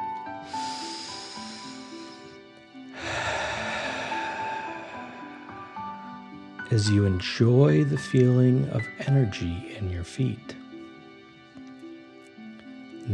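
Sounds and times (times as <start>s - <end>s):
quiet steady musical tones: 0.0s - 13.1s
deep breath in and out during a dragon-breath relaxation exercise: 0.4s - 6.6s
speech: 6.7s - 10.6s.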